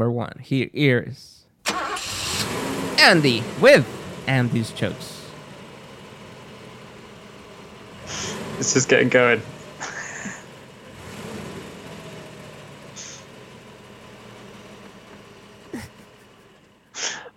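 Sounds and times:
speech: 0.0s - 1.8s, 2.5s - 5.1s, 8.1s - 9.6s
large vehicle engine idling with low rumble: 1.7s - 17.3s
short sharp hissing bursts: 8.0s - 8.4s, 13.0s - 13.3s, 17.0s - 17.3s
laughter: 9.8s - 10.5s, 15.7s - 16.4s.

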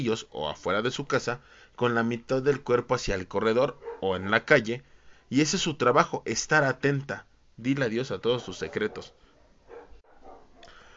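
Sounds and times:
speech: 0.0s - 9.2s
neighbors' dogs barking: 3.7s - 4.2s, 8.4s - 10.7s.

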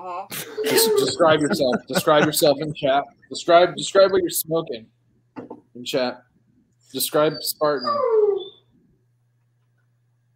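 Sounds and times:
speech: 0.0s - 5.0s, 5.8s - 6.3s, 6.9s - 8.2s
laughter: 0.4s - 2.9s
dog howling: 7.2s - 8.7s.

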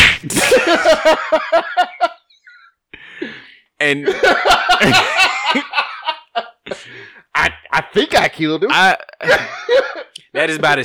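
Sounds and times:
sharp whooshing punch sound effect: 0.0s - 0.5s
laughter: 0.3s - 2.7s, 4.0s - 6.8s, 8.9s - 10.6s
speech: 0.7s - 1.8s, 3.8s - 5.3s, 8.3s - 10.8s.

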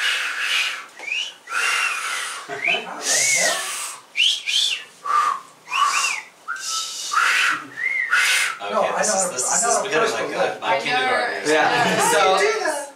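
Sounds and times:
person making short breathy wolf-whistles: 0.0s - 8.6s
voices: 0.0s - 12.9s
laughter: 11.5s - 12.4s.

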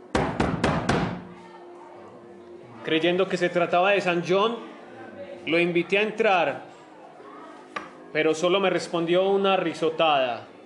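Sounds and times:
knocking on a bedroom door: 0.1s - 1.2s
speech: 2.8s - 4.7s, 5.4s - 6.7s, 8.1s - 10.5s.

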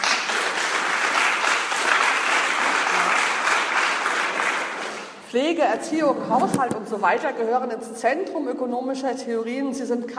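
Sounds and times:
audience applause: 0.0s - 5.2s
speech: 5.3s - 10.1s.

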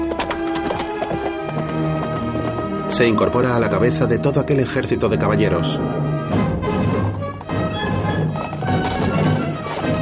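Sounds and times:
white horse hooves clip-clopping as a rider departs: 0.0s - 3.6s, 6.6s - 9.9s
speech: 2.9s - 6.4s.

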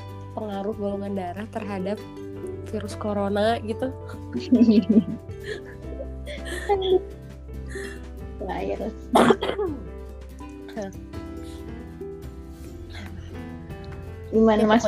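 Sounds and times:
speech: 0.4s - 5.8s, 6.7s - 7.2s, 8.5s - 9.9s, 10.8s - 11.2s, 14.3s - 14.8s
laughter: 4.1s - 7.1s
person coughing: 9.1s - 9.8s
rough throat clearing: 9.2s - 9.8s.

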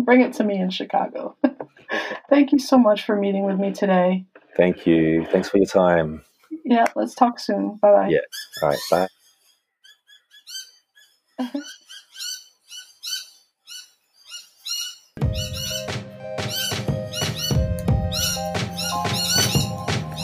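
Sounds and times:
speech: 0.0s - 9.2s, 11.4s - 11.8s
parrots squawking and chirping: 8.3s - 15.9s, 16.5s - 20.2s.

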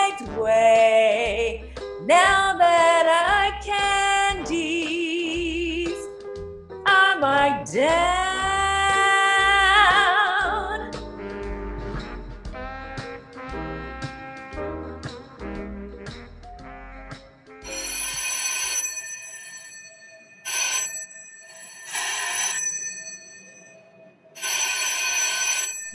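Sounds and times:
music: 0.0s - 18.7s
telephone bell ringing: 17.6s - 25.9s.

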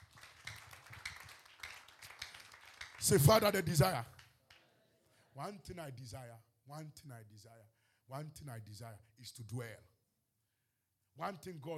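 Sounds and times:
crowd clapping hands in a steady rhythm: 0.0s - 4.8s
speech: 3.0s - 4.2s, 5.4s - 9.9s, 11.2s - 11.7s.

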